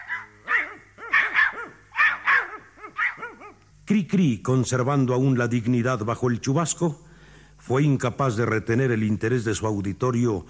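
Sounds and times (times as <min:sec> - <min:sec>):
dogs barking during a rain shower: 0:00.0 - 0:03.7
speech: 0:03.9 - 0:07.0, 0:07.6 - 0:10.4.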